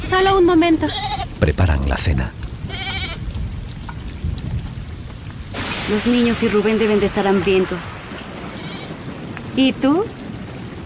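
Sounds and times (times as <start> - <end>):
heavy rain pouring down: 0.0 - 10.8
speech: 0.1 - 2.4, 5.9 - 8.0, 9.6 - 10.2
sheep bleat: 0.8 - 1.4, 2.7 - 3.2.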